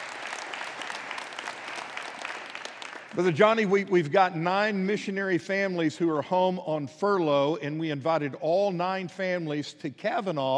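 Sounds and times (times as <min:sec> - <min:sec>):
audience applause: 0:00.0 - 0:03.7
speech: 0:03.2 - 0:10.5.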